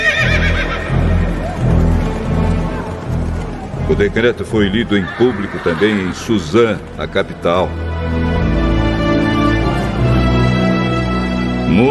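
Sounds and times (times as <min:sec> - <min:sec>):
horse neighing: 0:00.0 - 0:01.5, 0:04.7 - 0:06.8
horse hooves galloping: 0:00.0 - 0:11.1
speech: 0:03.9 - 0:08.2.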